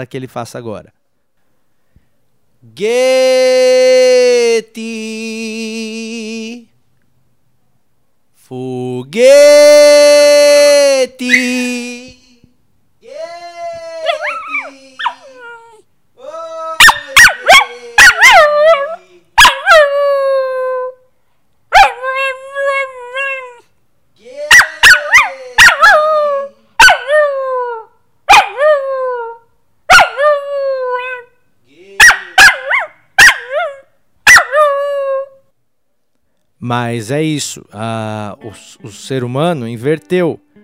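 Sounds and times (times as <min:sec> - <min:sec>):
speech: 0:00.0 - 0:01.0, 0:02.6 - 0:05.5, 0:36.7 - 0:40.4
person calling a dog's name: 0:02.8 - 0:06.6, 0:09.1 - 0:21.0, 0:21.8 - 0:35.4, 0:36.6 - 0:40.5
dog howling like a wolf with yips and barks: 0:13.5 - 0:15.8, 0:16.6 - 0:21.0, 0:21.8 - 0:23.6, 0:24.4 - 0:31.3, 0:32.0 - 0:35.4.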